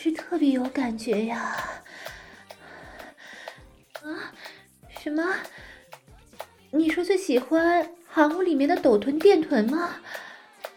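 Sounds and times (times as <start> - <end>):
speech: 0.1 - 2.1, 5.0 - 5.6, 6.7 - 10.2
heavy deliberate panting breaths: 1.2 - 6.0, 9.9 - 10.7.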